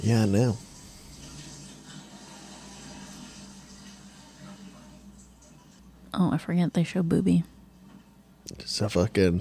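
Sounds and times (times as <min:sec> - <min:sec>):
speech: 0:00.0 - 0:00.7, 0:06.2 - 0:07.5, 0:08.5 - 0:09.4
shower water running: 0:00.0 - 0:06.0
low hum: 0:00.0 - 0:09.4.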